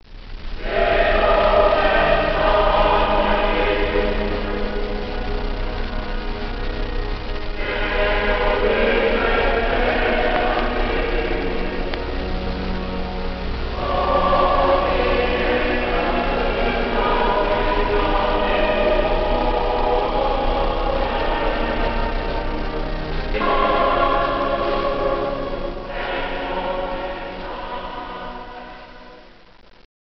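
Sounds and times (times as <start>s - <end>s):
distant cathedral organ chorale: 0.6s - 29.4s.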